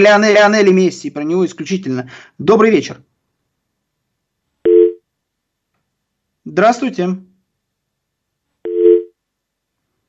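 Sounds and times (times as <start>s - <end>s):
speech: 0.0s - 3.1s, 6.5s - 7.3s
telephone busy tone after a caller's line dropped: 4.6s - 5.0s, 8.6s - 9.1s.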